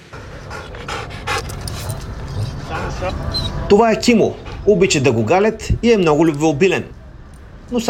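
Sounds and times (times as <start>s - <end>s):
trained military special-operations dog panting: 0.0s - 5.6s
speech: 3.0s - 7.0s.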